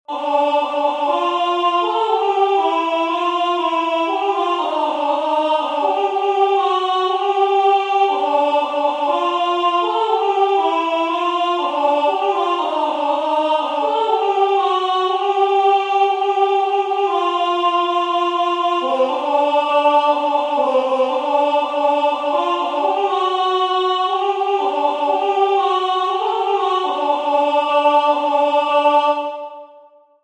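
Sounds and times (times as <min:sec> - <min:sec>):
alto singing a drinking song: 0:00.1 - 0:29.7.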